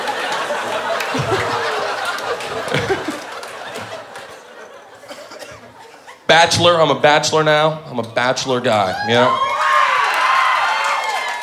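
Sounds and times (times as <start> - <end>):
audience applauding: 0.0 - 4.8, 9.3 - 11.4
audience cheering and whooping: 0.0 - 4.8, 8.9 - 11.4
laughter: 0.0 - 6.3
speech: 6.4 - 9.5.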